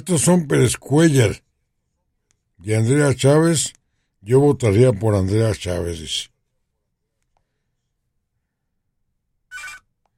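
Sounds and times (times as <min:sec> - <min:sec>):
speech: 0:00.0 - 0:01.4, 0:02.6 - 0:06.3
electronic telephone ring for an incoming call: 0:09.5 - 0:09.9.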